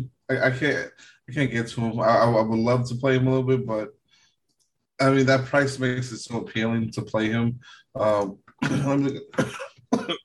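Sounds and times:
speech: 0.0 - 4.0, 5.0 - 10.2
person coughing with throat caught mid-sentence: 8.6 - 10.2.

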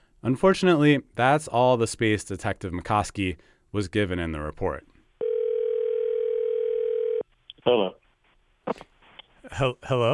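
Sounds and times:
speech: 0.2 - 4.9, 7.6 - 8.0, 8.7 - 10.1
telephone dial tone: 5.2 - 7.2.

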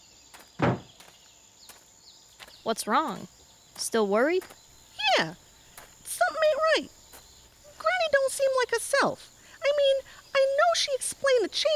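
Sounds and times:
soft quick footsteps: 0.3 - 8.2
door opening with a solid thunk: 0.6 - 1.0
speech: 2.6 - 5.4, 8.3 - 11.7.

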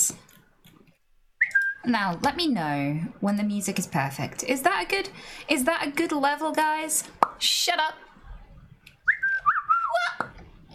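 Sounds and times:
woman whistling bird call as a Tourette's vocal tic: 1.4 - 1.9, 9.1 - 10.1
speech: 1.8 - 8.1.

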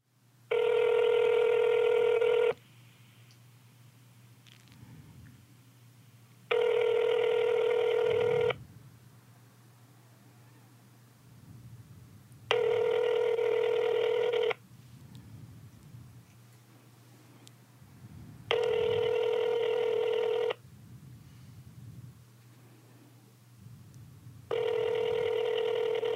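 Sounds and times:
faint low hum: 0.0 - 26.1
outgoing phone call ringback tone: 0.5 - 2.6, 6.5 - 8.6, 12.5 - 14.6, 18.5 - 20.6, 24.5 - 26.1.

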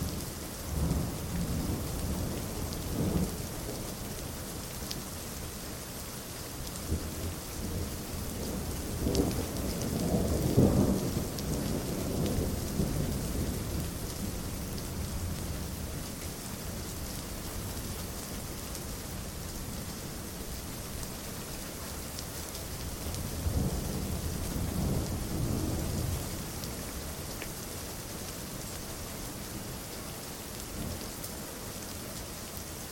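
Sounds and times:
steady rain hissing in a thunderstorm: 0.0 - 32.9
deep rumbles of thunder: 8.6 - 14.2, 23.4 - 26.2.

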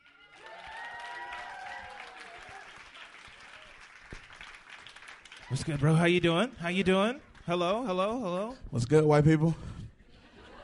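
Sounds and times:
audience cheers: 0.0 - 4.1
audience applause: 0.0 - 6.1
speech: 5.5 - 9.7.

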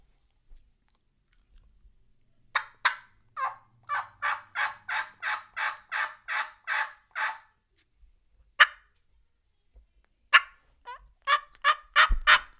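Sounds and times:
turkey hen yelps and cuts made on a call by a hunter: 2.5 - 7.5, 8.6 - 9.0, 10.3 - 12.5.

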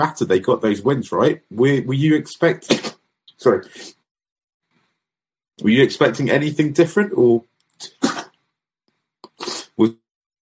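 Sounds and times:
speech: 0.0 - 4.0, 5.6 - 8.0, 9.8 - 10.0
person sneezing after landing from a flight: 2.6 - 3.0, 7.8 - 8.4, 9.3 - 9.8.

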